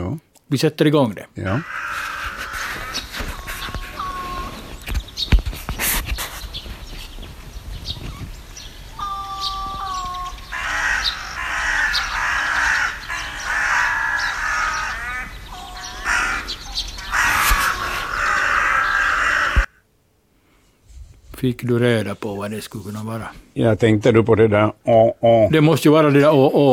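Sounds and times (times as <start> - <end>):
speech: 0.5 - 2.1, 21.4 - 26.7
crows giving agitated mobbing caws: 1.4 - 4.9, 8.1 - 19.8.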